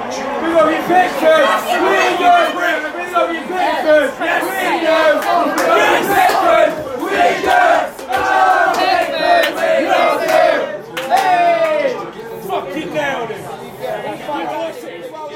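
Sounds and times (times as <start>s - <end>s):
football fans shouting: 0.0s - 12.0s
dense crowd of football fans roaring and chanting: 0.0s - 15.3s
speech: 0.9s - 6.8s
scattered clapping: 4.6s - 12.1s.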